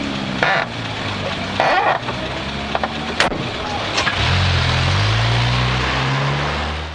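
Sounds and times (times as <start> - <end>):
car engine idling, revving and driving off: 0.0 - 6.9
clunks: 1.6 - 4.3.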